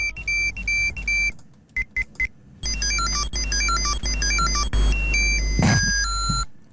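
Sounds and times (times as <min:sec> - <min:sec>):
1990s Tamagotchi virtual pet electronic beeping: 0:00.0 - 0:01.3, 0:02.6 - 0:06.5.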